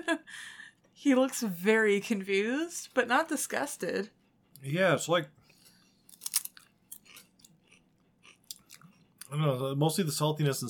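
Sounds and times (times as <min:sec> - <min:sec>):
speech: 0:00.0 - 0:05.4, 0:09.3 - 0:10.6
crunching and chewing a potato chip: 0:06.1 - 0:09.4.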